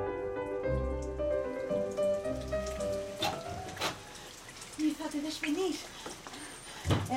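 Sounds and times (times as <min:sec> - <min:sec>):
heavy rain hissing: 0:00.2 - 0:07.1.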